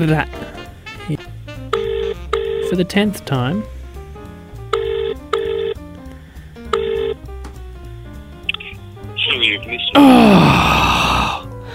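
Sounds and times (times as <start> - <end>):
speech: 0.0 - 0.6, 2.7 - 3.7
soft music: 0.0 - 11.7
electronic ringback tone of an unanswered outgoing phone call: 1.8 - 2.7, 4.7 - 5.8, 6.7 - 7.2.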